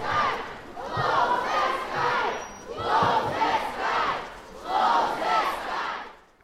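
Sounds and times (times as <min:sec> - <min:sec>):
large protest crowd chanting a slogan in unison: 0:00.0 - 0:06.4.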